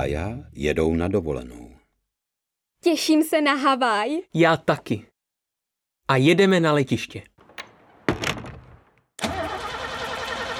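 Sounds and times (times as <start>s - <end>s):
speech: 0.0s - 1.7s, 2.8s - 5.1s, 6.1s - 7.3s
car engine cranking but failing to start: 9.2s - 10.5s.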